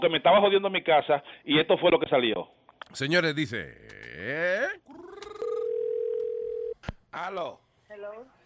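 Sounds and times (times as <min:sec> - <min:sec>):
speech: 0:00.0 - 0:05.1, 0:07.1 - 0:08.4
electronic telephone ringback tone while placing a call: 0:05.4 - 0:06.8.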